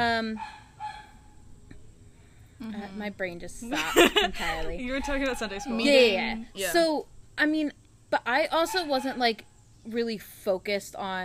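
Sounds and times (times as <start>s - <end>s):
speech: 0.0s - 0.6s, 2.6s - 11.2s
neighbour's dog barking: 0.4s - 1.2s, 8.7s - 9.2s
laughter: 3.7s - 4.8s.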